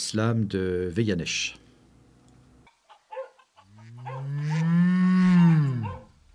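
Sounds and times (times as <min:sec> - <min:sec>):
speech: 0:00.0 - 0:01.6
cow mooing: 0:03.7 - 0:06.1.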